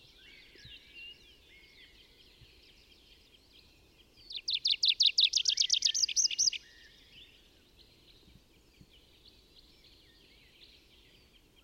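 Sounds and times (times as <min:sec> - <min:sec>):
faint mixed birdsong in the Bavarian Forest: 0:00.0 - 0:11.6.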